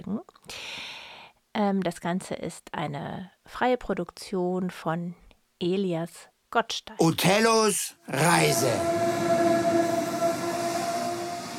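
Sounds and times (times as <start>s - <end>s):
speech: 0.1s - 0.6s, 1.6s - 9.2s
train rolling along rails: 8.2s - 11.5s.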